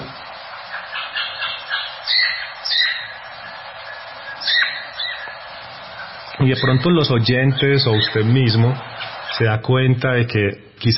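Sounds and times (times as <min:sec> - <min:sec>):
blackbirds calling while flying or on the ground: 0:00.7 - 0:09.4
speech: 0:06.4 - 0:10.9.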